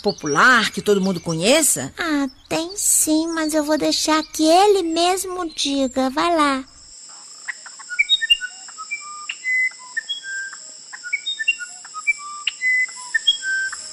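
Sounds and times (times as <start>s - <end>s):
speech: 0.0s - 6.8s
steady high insect drone: 0.0s - 13.9s
uirapuru musician wren singing flute-like whistles: 7.8s - 13.9s.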